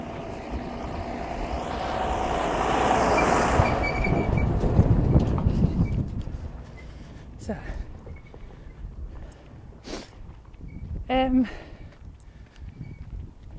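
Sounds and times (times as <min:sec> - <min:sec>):
very large heavy tractor rumbling past: 0:00.0 - 0:07.5.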